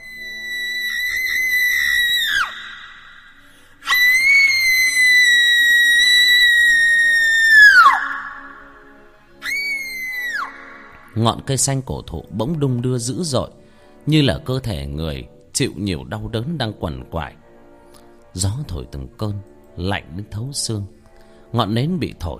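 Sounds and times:
young woman's mournful high-pitched scream: 0.0s - 8.6s, 9.4s - 10.8s
speech: 11.2s - 17.4s, 18.3s - 22.3s.

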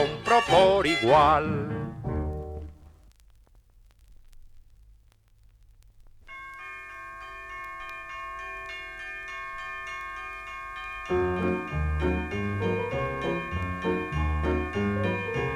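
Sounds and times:
speech: 0.4s - 1.8s
faint crackle: 2.0s - 15.5s
bells ringing in a children's song: 6.3s - 15.5s.

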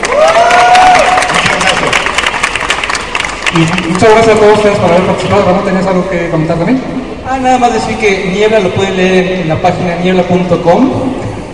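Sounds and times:
crowd cheering: 0.0s - 4.0s
audience applause for a guest at a live comics talk program: 0.0s - 4.2s
speech: 3.6s - 11.2s.

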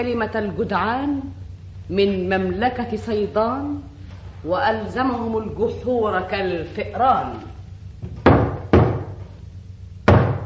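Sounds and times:
speech: 0.0s - 7.5s
low steady hum: 0.0s - 10.4s
heavy knocks on a door: 8.0s - 9.2s, 10.1s - 10.4s.

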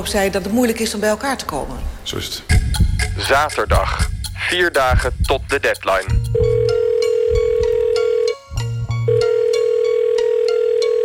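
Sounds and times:
speech: 0.0s - 6.4s
telephone call ringing on the line: 6.3s - 8.4s, 9.0s - 11.0s.

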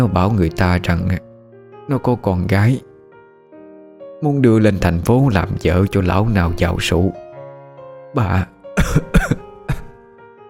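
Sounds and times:
speech: 0.0s - 1.3s, 1.9s - 2.9s, 4.2s - 7.2s, 8.1s - 9.4s
old woman coughing violently: 8.8s - 10.0s.

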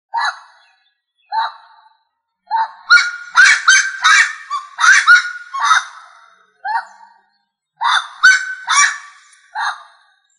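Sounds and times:
rail grating squawk calls: 2.9s - 6.1s, 7.8s - 9.9s.

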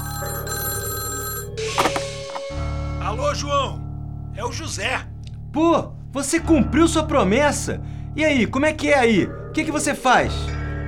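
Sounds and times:
telephone bell ringing: 0.0s - 2.5s
speech: 3.1s - 3.8s, 4.4s - 10.5s.

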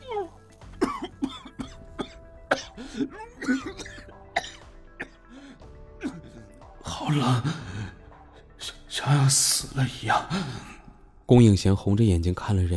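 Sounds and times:
person coughing after inhaling ammonia gas: 0.1s - 7.7s
speech: 3.0s - 3.9s, 7.1s - 7.6s, 9.1s - 10.7s, 11.3s - 12.7s.

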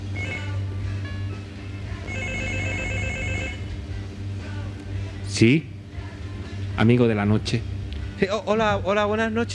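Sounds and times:
telephone ringing during a staged listener call: 0.2s - 0.7s, 2.0s - 3.7s
speech: 5.4s - 5.8s, 6.8s - 9.5s.

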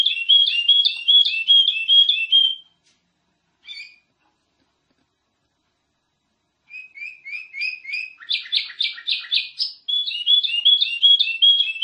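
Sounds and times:
nightingale song: 0.0s - 2.8s, 3.6s - 4.1s, 6.6s - 11.8s.

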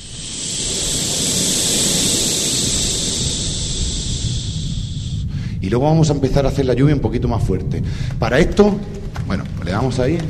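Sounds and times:
group of people imitating wind blowing with voices and breath: 0.0s - 5.6s
speech: 5.6s - 10.2s.

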